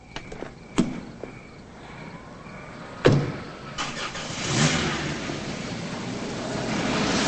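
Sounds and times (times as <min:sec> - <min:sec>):
car pulling away with engine and road noise: 0:01.8 - 0:07.2
car engine turning over and starting: 0:02.5 - 0:07.2
car door thumping: 0:03.0 - 0:03.4.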